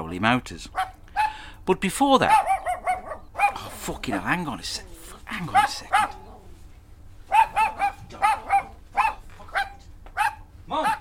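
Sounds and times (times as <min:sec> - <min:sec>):
speech: 0:00.1 - 0:00.9, 0:01.6 - 0:02.5, 0:03.9 - 0:06.2
dog barking: 0:00.8 - 0:01.5, 0:02.2 - 0:04.4, 0:05.5 - 0:06.4, 0:07.3 - 0:11.0.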